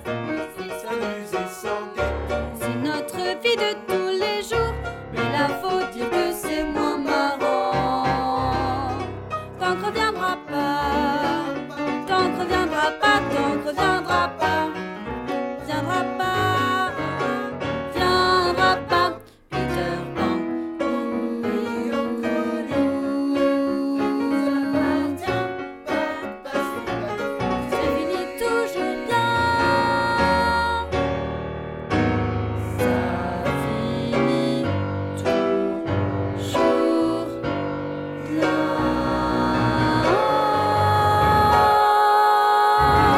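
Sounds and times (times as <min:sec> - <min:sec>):
alto voice singing a refrain: 0:00.1 - 0:31.1, 0:32.6 - 0:43.1.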